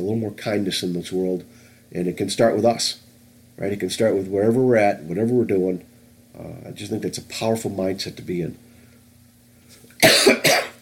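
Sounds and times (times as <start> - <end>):
speech: 0.0 - 3.0, 3.6 - 8.6, 10.0 - 10.6
person coughing harshly: 10.0 - 10.8.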